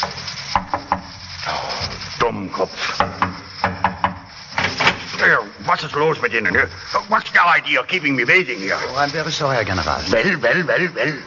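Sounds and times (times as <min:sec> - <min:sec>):
rustling and scraping: 0:00.0 - 0:10.3
speech: 0:02.2 - 0:03.1, 0:05.8 - 0:11.2
knocking on a wooden door: 0:03.0 - 0:04.2
laughter: 0:09.7 - 0:11.2.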